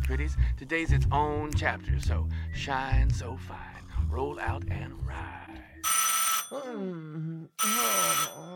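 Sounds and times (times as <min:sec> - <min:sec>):
speech: 0:00.1 - 0:08.5
telephone ringing: 0:05.8 - 0:06.6, 0:07.6 - 0:08.5.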